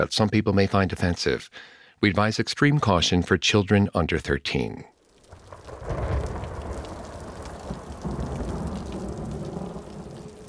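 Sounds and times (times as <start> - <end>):
speech: 0.0 - 4.9
deep roll of thunder rumbling: 5.0 - 10.4
steady rain: 5.0 - 10.4.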